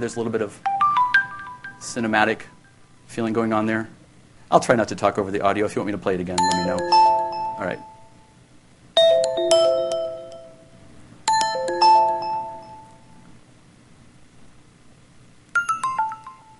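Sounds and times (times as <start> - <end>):
speech: 0.0 - 0.9, 1.8 - 7.9
chimed phone SMS notification tones: 0.6 - 2.2, 6.4 - 8.2, 9.0 - 13.2, 15.6 - 16.5.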